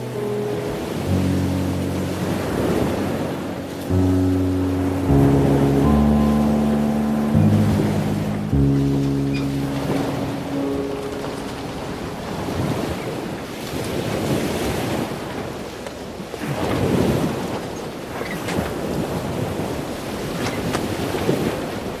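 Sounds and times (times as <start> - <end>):
sustained low droning chords: 0.0 - 13.4
sea waves: 0.0 - 21.9.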